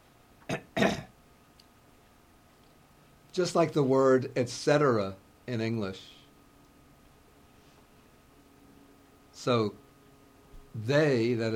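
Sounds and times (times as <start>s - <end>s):
throat clearing of phlegm: 0.4s - 1.2s
speech: 3.4s - 6.2s, 9.4s - 9.8s, 10.8s - 11.5s.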